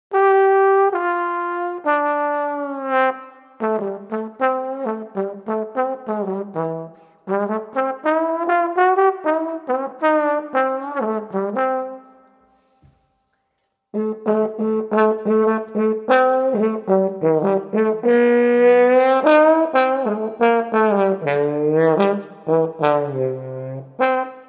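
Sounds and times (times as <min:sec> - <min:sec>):
trombone: 0:00.1 - 0:12.2, 0:14.0 - 0:24.4.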